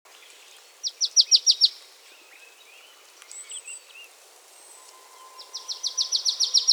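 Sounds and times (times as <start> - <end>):
marsh tit Poecile palustris calling: 4.8 - 6.7.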